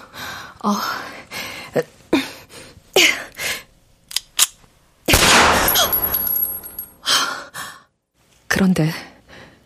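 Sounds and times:
speech: 0.6s - 1.1s, 1.7s - 2.0s, 8.6s - 9.1s
loud gunshot blast at an indoor shooting range: 5.1s - 5.8s
pistol shots at an indoor shooting range in Mokdong: 5.1s - 6.1s.

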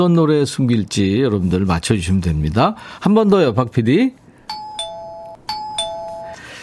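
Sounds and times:
speech: 0.0s - 4.2s
front door bell two-tone ding-dong chime: 4.5s - 6.4s.

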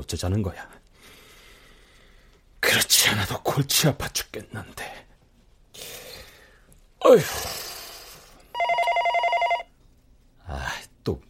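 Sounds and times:
speech: 0.0s - 0.8s, 2.8s - 5.0s, 7.0s - 7.6s, 10.5s - 11.2s
telephone bell ringing: 8.5s - 9.7s.

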